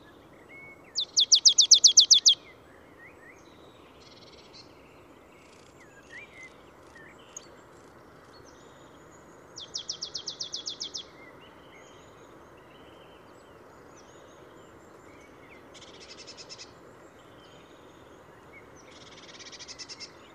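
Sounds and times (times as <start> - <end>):
marsh tit (Poecile palustris) calling: 1.0 - 2.4.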